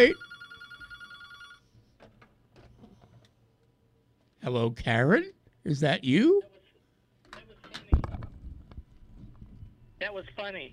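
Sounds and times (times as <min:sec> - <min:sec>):
speech: 0:00.0 - 0:00.2, 0:04.4 - 0:06.5, 0:10.0 - 0:10.7
telephone ringing: 0:00.0 - 0:01.7.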